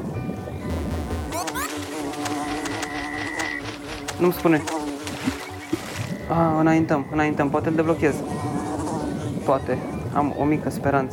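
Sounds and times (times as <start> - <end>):
wasps buzzing: 0.7 - 6.3, 7.7 - 9.3
speech: 4.2 - 4.8, 6.3 - 8.4, 9.5 - 11.1.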